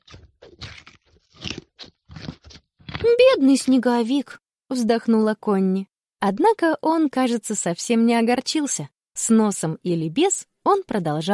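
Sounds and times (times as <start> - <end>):
horse crunching a carrot: 0.0 - 3.0
speech: 3.1 - 11.3.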